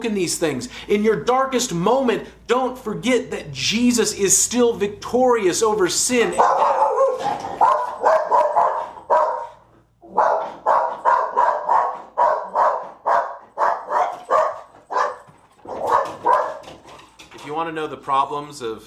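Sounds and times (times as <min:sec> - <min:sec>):
speech: 0:00.0 - 0:07.6, 0:17.8 - 0:18.8
dog barking: 0:06.3 - 0:16.8.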